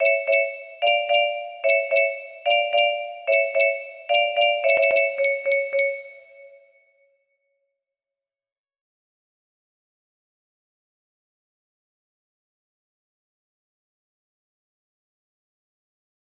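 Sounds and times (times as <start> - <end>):
music box melody: 0.0 - 6.7.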